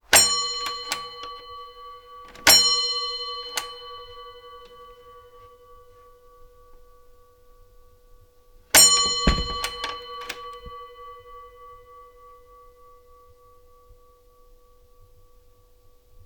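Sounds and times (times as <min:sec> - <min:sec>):
office front door bell ringing: 0:00.2 - 0:05.9, 0:08.8 - 0:12.0.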